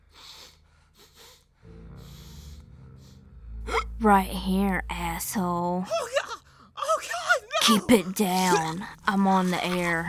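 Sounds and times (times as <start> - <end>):
loud sniffing: 0.1 - 3.2
deep low rumble: 1.5 - 5.8
speech: 4.0 - 6.2, 7.7 - 10.0.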